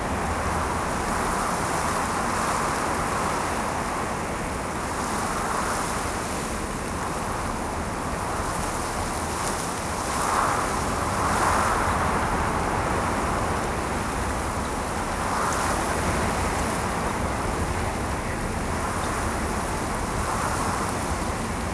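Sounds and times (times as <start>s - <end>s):
wind through leaves: 0.0s - 21.7s.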